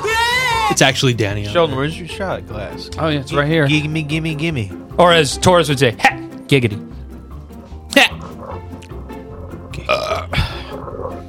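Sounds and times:
speech: 0.7 - 6.9, 8.0 - 8.2
loud rough low belch over a cup: 8.1 - 11.2.

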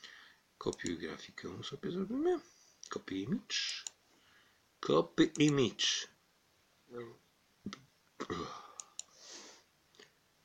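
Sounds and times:
speech: 0.6 - 3.9, 4.8 - 6.1, 6.9 - 8.6
short throaty burp: 8.2 - 8.7.

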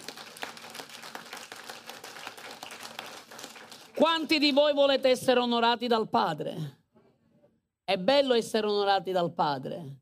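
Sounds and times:
church audience clapping: 0.0 - 4.4
speech: 4.0 - 6.8, 7.9 - 10.0.

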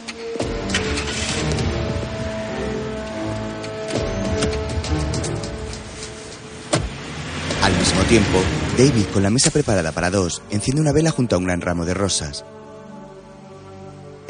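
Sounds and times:
power window whirring: 0.4 - 5.1
car starting off with a steady engine hum: 0.5 - 10.0
car doors thudding shut: 6.6 - 7.2
speech: 8.1 - 12.6.

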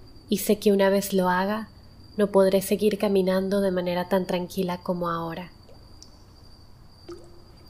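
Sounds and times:
faint steady hum: 0.0 - 7.6
speech: 0.3 - 5.6
water drops dripping and echoing in an alley: 5.6 - 6.2, 7.0 - 7.6.

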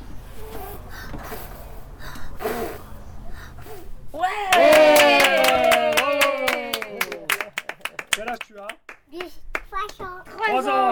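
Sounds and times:
faint noise: 0.0 - 10.9
child blowing out birthday candles: 0.4 - 4.0.

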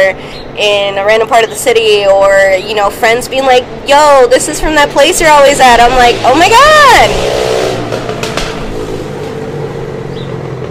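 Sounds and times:
speech: 0.1 - 7.9
motorcycle engine revving: 3.6 - 10.7.

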